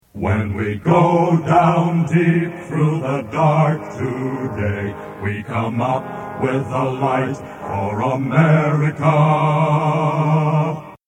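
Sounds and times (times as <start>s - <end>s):
male voice choir singing: 0.1s - 11.0s.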